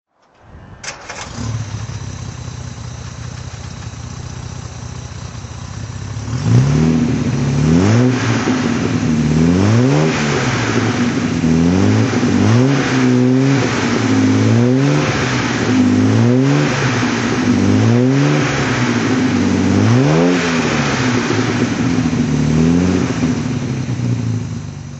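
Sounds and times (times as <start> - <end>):
Austin Healey 3000 Mk3 engine throttle: 0.2 - 24.9.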